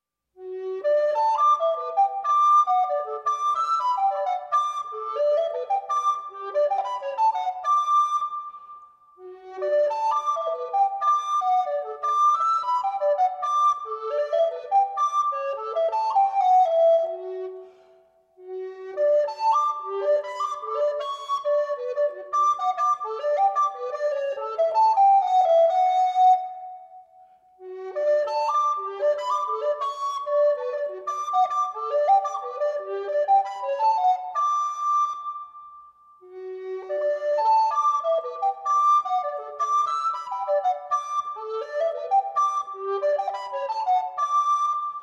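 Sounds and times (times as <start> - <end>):
alto recorder melody: 0.4 - 45.0.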